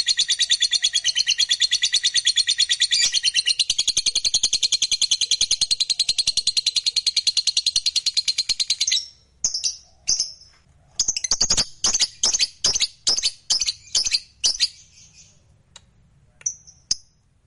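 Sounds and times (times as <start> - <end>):
fighter-type lovebird singing energetically with rapid high chattering and sharp chirps: 0.0 - 15.4.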